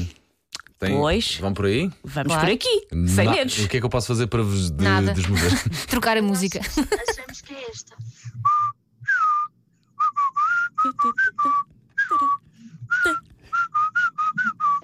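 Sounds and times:
speech: 0.8 - 8.7, 10.8 - 11.6
whistled melody played in reverse: 8.4 - 14.8.

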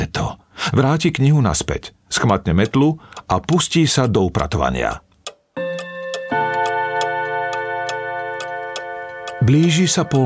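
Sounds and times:
speech: 0.7 - 5.1, 9.5 - 10.2
cuckoo clock ticking: 2.1 - 10.2
sustained humming musical tone: 5.6 - 10.2.

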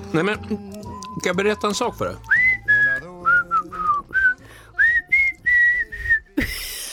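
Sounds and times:
speech: 0.1 - 2.3
person whistling a tune: 2.2 - 6.4.

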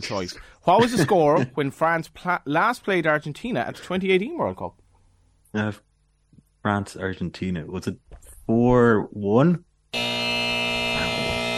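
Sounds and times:
speech: 0.0 - 4.8, 5.5 - 5.9, 6.6 - 10.2
harsh loud quiz wrong-answer buzzer: 9.9 - 11.5.

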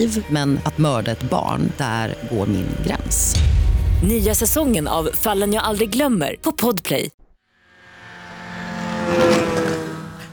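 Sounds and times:
speech: 0.0 - 7.2
small moped engine revving as it arrives at a bicycle rack: 7.6 - 10.3.

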